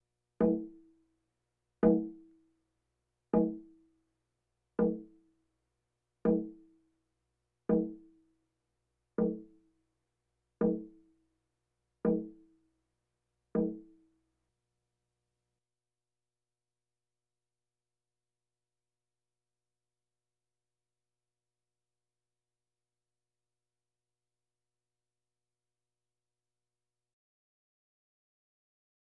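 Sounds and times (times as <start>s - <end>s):
bongos: 0.4s - 0.8s, 1.8s - 2.3s, 3.4s - 3.8s, 7.7s - 8.1s, 9.2s - 9.6s, 12.1s - 12.4s, 13.6s - 13.9s.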